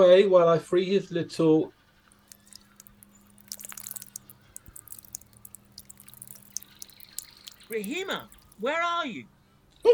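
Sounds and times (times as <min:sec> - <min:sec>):
speech: 0:00.0 - 0:01.8, 0:07.7 - 0:09.9
thin stream of liquid trickling: 0:01.7 - 0:08.7
scattered drips and splashes: 0:01.8 - 0:08.7.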